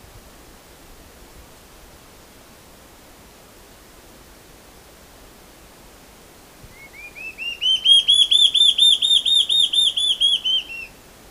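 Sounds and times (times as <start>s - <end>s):
Large-tailed antshrike singing quick whistled notes: 6.7s - 10.9s.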